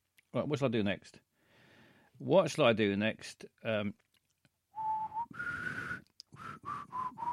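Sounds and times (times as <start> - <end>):
speech: 0.4 - 1.3, 2.2 - 4.0
person whistling a TV theme tune: 4.8 - 7.3.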